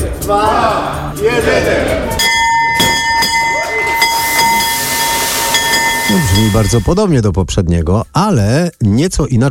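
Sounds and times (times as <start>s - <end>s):
speech: 0.3s - 2.2s, 6.4s - 9.4s
stock exchange opening bell ringing: 2.1s - 7.1s.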